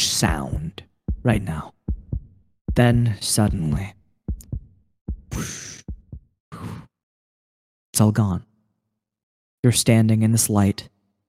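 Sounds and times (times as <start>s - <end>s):
speech: 0.2s - 1.8s, 2.8s - 4.0s, 5.4s - 5.7s, 8.0s - 8.5s, 9.6s - 10.9s
heartbeat thumps in lub-dub pairs: 0.3s - 6.4s.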